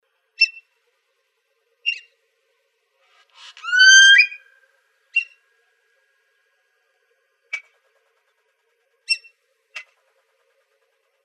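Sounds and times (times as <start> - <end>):
fulvous whistling-duck giving squeaky notes and whistle: 0.4 - 0.6, 3.4 - 4.5.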